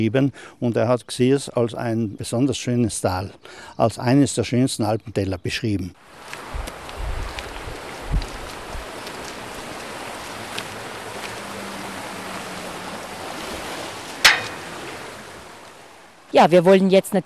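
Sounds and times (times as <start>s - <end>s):
speech: 0.0s - 6.7s, 16.4s - 17.2s
mountain stream flowing in an Alpine valley: 6.0s - 16.7s.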